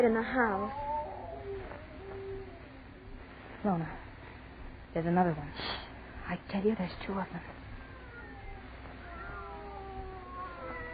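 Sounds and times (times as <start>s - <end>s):
speech: 0.0s - 0.9s, 3.6s - 4.0s, 4.9s - 7.6s
low hum: 0.0s - 10.9s
cats meowing: 0.4s - 3.2s, 7.8s - 10.9s.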